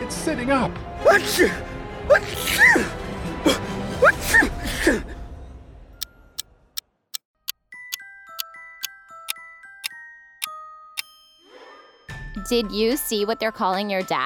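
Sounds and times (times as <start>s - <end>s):
speech: 0.2s - 5.1s, 12.5s - 14.2s
mummy sneezing with gasping breaths: 1.1s - 5.1s
faint tinkling chime notes: 7.7s - 13.4s.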